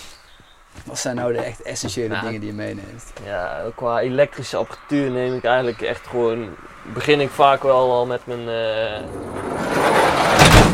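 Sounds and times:
speech: 0:00.9 - 0:10.7
van sliding door rolling along its track and thudding shut: 0:09.0 - 0:10.7.

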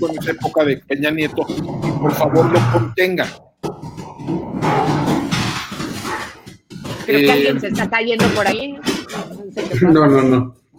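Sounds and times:
speech: 0:00.0 - 0:03.5, 0:04.3 - 0:05.1, 0:07.1 - 0:08.9, 0:09.6 - 0:10.6
dogs snarling and growling while fighting: 0:01.2 - 0:07.1.

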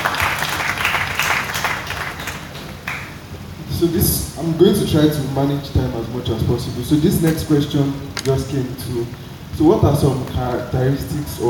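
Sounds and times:
crowd applauding: 0:00.0 - 0:03.2
speech: 0:03.8 - 0:11.4.

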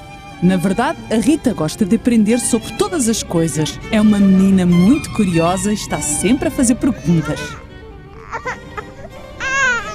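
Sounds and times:
speech: 0:00.4 - 0:07.6
one-year-old baby boy crying: 0:06.8 - 0:09.9.

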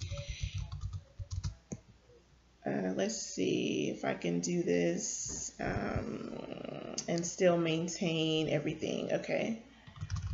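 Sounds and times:
typing on a computer keyboard: 0:00.0 - 0:01.6, 0:09.8 - 0:10.3
speech: 0:03.0 - 0:09.7.

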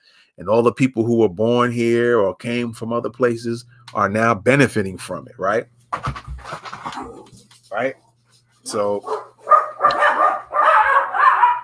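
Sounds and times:
speech: 0:00.4 - 0:06.2, 0:07.7 - 0:08.0, 0:08.6 - 0:09.3
dogs barking: 0:09.0 - 0:11.6.

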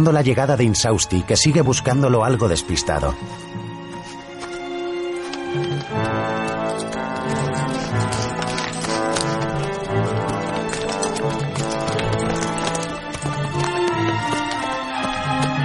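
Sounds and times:
speech: 0:00.0 - 0:03.6
loud sustained orchestral music: 0:00.2 - 0:15.6
horse hooves clip-clopping as horse is ridden across a river: 0:03.2 - 0:15.6.

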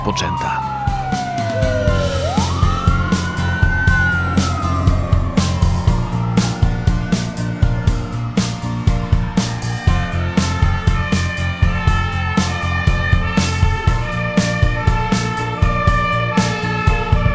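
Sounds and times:
speech: 0:00.0 - 0:00.7
fire engine low engine rumble: 0:00.0 - 0:17.3
fire engine siren wailing: 0:00.0 - 0:17.3
regular rhythmic thumping: 0:00.0 - 0:17.3.

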